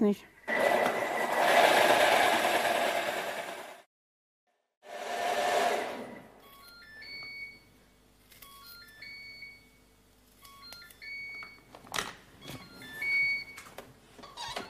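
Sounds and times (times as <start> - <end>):
speech: 0.0 - 0.6
blender motor mixing cream: 0.5 - 3.8, 4.8 - 6.3.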